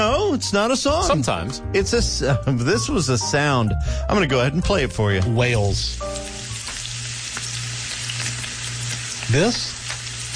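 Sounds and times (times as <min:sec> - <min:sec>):
speech: 0:00.4 - 0:06.3, 0:09.3 - 0:09.8
bacon frying and sizzling: 0:04.7 - 0:10.3.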